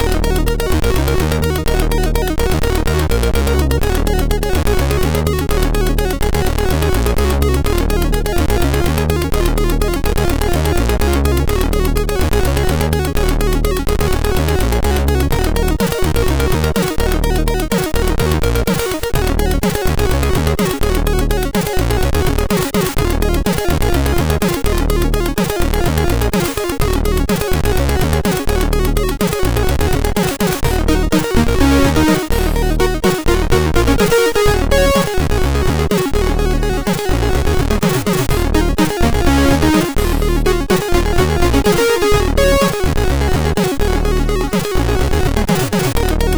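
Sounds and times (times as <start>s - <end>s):
MOS6581R2 SID chip sound: 0.0s - 46.3s.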